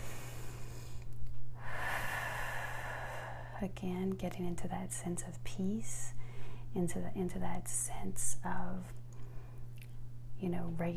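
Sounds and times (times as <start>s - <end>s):
deep breathing in through the nose and out through the mouth: 0.0s - 3.6s, 6.2s - 6.7s
faint steady hum: 0.0s - 10.9s
speech: 3.6s - 6.2s, 6.8s - 9.0s, 10.4s - 10.9s.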